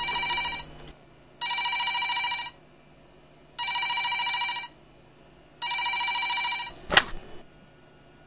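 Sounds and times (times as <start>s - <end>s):
telephone ringing at night: 0.0s - 0.8s, 1.4s - 2.6s, 3.6s - 4.8s, 5.6s - 6.8s.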